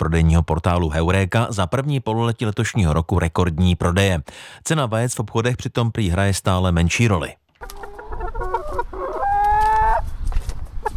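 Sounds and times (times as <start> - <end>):
speech: 0.0 - 7.8
hens clucking at a backyard chicken coop in a family-house garden: 7.6 - 10.0.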